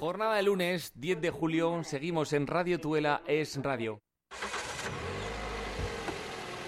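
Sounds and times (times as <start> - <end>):
speech: 0.2 - 4.0
car engine starting: 4.3 - 6.6.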